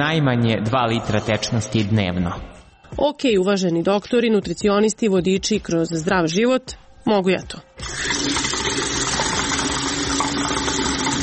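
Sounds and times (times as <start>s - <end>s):
speech: 0.0s - 8.4s
tap water running into a drinking glass: 7.8s - 11.2s.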